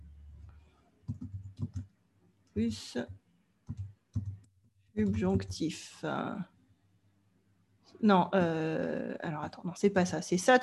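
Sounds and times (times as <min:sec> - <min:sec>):
low quiet hum: 0:00.0 - 0:07.1
typing on a computer keyboard: 0:01.1 - 0:01.9, 0:03.6 - 0:04.5
speech: 0:02.6 - 0:03.2, 0:05.0 - 0:06.5, 0:08.0 - 0:10.6.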